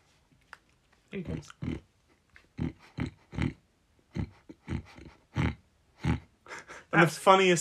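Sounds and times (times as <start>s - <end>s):
speech: 1.1s - 1.9s, 2.6s - 3.2s, 7.0s - 7.6s
man imitating a pig with snorting grunts: 2.6s - 6.3s.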